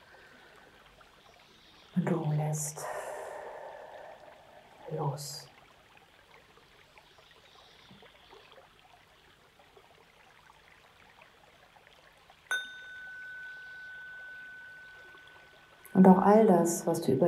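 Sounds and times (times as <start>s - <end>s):
flowing river water: 0.0s - 17.2s
speech: 2.0s - 3.0s, 4.9s - 5.5s, 16.0s - 17.2s
bright bell-like tone: 12.5s - 16.3s.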